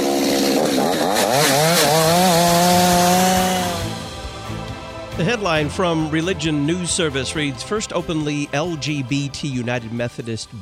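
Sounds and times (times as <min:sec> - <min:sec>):
chainsaw engine revving: 0:00.0 - 0:04.2
speech: 0:05.3 - 0:10.5.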